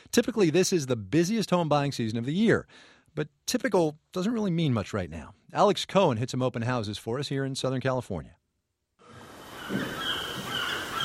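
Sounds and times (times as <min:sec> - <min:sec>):
speech: 0:00.2 - 0:08.4, 0:09.7 - 0:10.0
Pacific Ocean surf: 0:09.0 - 0:11.0
wind noise: 0:09.1 - 0:11.0
seagulls calling at a townhouse in Santa Monica: 0:09.2 - 0:11.0.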